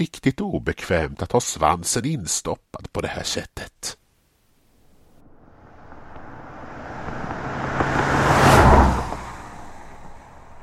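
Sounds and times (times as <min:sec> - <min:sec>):
speech: 0:00.0 - 0:04.0
car engine and tyre noise approaching along a road: 0:04.8 - 0:10.6.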